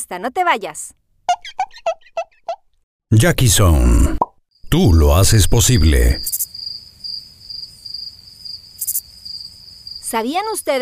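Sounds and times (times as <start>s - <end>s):
speech: 0.0s - 1.0s, 3.1s - 6.4s, 10.1s - 10.8s
crickets chirping: 4.6s - 10.8s.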